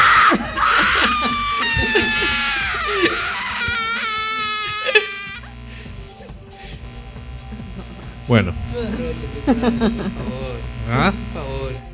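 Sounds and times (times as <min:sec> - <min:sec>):
man screaming in a building hall: 0:00.0 - 0:05.4
laughter: 0:00.1 - 0:06.6, 0:08.8 - 0:10.6
speech: 0:08.3 - 0:08.6, 0:09.2 - 0:11.2.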